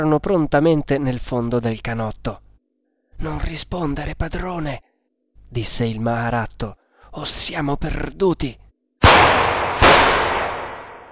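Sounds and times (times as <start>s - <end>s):
speech: 0.0s - 2.4s, 3.2s - 4.9s, 5.5s - 9.3s
carbine shots fired at a canoe, punching through bamboo: 9.0s - 11.1s.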